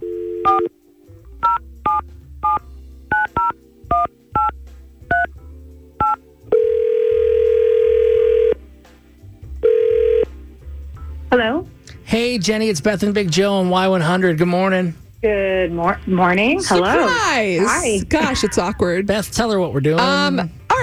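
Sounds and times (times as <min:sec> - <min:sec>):
telephone ringback tone: 0:00.0 - 0:00.7, 0:06.0 - 0:08.6, 0:09.6 - 0:10.3
touch-tone beeps dialing a phone number: 0:00.4 - 0:00.7, 0:01.4 - 0:04.5, 0:06.0 - 0:08.6
speech: 0:12.2 - 0:20.8.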